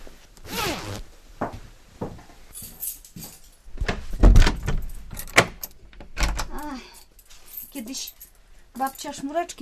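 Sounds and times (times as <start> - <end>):
clothing rustle: 0.0 - 5.1, 6.8 - 9.4
jacket being zipped up to the neck: 0.4 - 1.1
light jangling clinks: 2.5 - 3.7, 6.5 - 9.4
speech: 7.9 - 8.2, 8.8 - 9.6.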